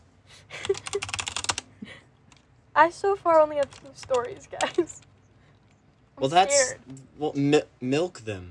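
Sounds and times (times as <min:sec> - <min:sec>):
typing on a computer keyboard: 0:00.6 - 0:01.7, 0:03.6 - 0:06.0
speech: 0:02.8 - 0:05.0, 0:06.2 - 0:08.5.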